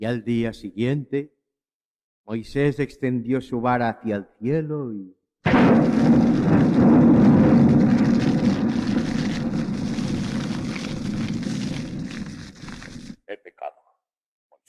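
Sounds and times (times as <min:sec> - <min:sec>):
speech: 0:00.0 - 0:01.4, 0:02.3 - 0:07.0
thunder roaring with storm noise: 0:05.5 - 0:12.7.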